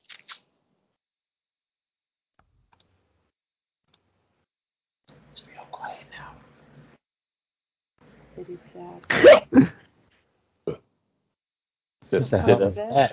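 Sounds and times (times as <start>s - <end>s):
quiet whispering: 5.3s - 6.4s
speech: 8.4s - 9.8s, 12.1s - 13.1s
loud hiccup rolling into a burp: 9.1s - 9.8s, 10.7s - 10.9s.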